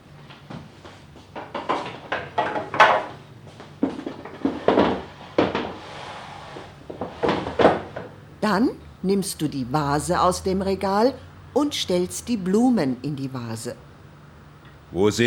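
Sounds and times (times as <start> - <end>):
two wooden chairs set down at a table: 0.4 - 8.2
speech: 8.4 - 13.9, 14.9 - 15.2.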